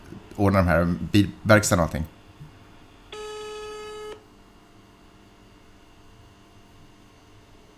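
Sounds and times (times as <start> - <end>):
speech: 0.4 - 2.2
ringback tone from an outgoing phone call: 3.2 - 4.2.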